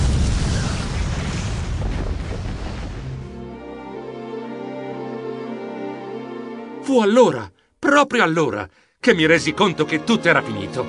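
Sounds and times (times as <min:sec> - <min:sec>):
huge explosion sound effect: 0:00.0 - 0:03.3
speech: 0:06.9 - 0:10.8.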